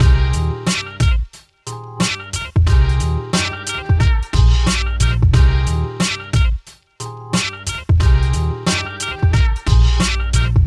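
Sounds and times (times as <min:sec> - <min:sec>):
drum loops comb mix inverted: 0:00.0 - 0:10.6.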